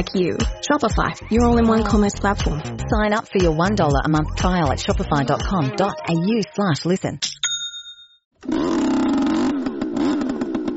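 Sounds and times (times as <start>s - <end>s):
speech: 0.0s - 7.4s
small two-stroke leaf blower engine starting and running: 8.4s - 10.7s.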